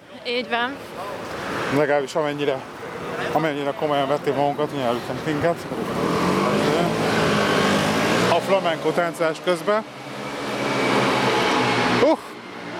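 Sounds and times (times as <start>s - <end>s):
speech: 0.2s - 6.1s, 8.5s - 10.0s
motor scooters buzzing past: 4.4s - 12.7s.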